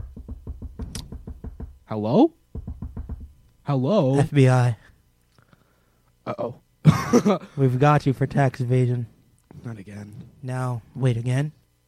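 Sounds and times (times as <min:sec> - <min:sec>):
sharp knocks on a door: 0:00.0 - 0:01.9, 0:02.5 - 0:03.4
speech: 0:01.9 - 0:02.4, 0:03.7 - 0:04.8, 0:06.3 - 0:11.6.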